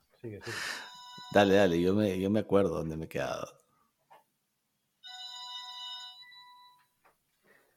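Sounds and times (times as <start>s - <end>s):
speech: 0.2s - 3.6s
phone ringing with electronic tone: 0.6s - 2.1s, 5.0s - 7.0s.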